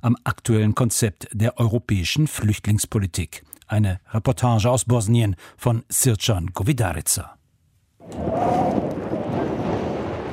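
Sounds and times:
speech: 0.0s - 7.4s
icy wind rushing and roaring around a camp: 8.0s - 10.3s.

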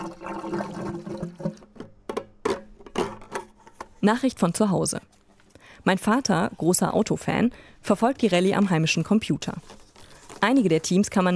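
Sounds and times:
petrol poured by hand from a canister into a car fuel tank in cold conditions: 0.0s - 3.4s
speech: 4.0s - 5.2s, 5.8s - 9.8s, 10.4s - 11.3s.

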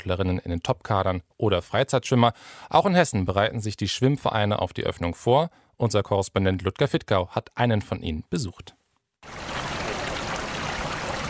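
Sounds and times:
speech: 0.0s - 9.5s
rushing water from circulation pumps at an outdoor swimming pool: 9.3s - 11.2s.

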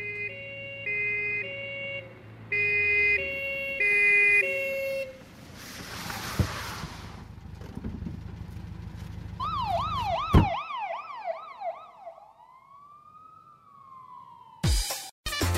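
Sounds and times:
wailing police siren in a song: 0.0s - 5.2s, 9.4s - 14.8s
playful police-themed song: 14.6s - 15.5s.

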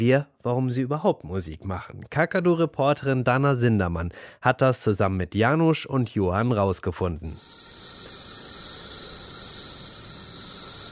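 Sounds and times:
speech: 0.0s - 7.8s
periodical cicadas singing in a dense chorus on one tree: 7.4s - 10.9s.

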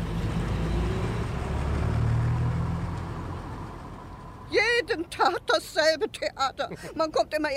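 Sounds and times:
bus engine revving as the bus pulls away: 0.0s - 5.0s
speech: 4.9s - 7.5s.

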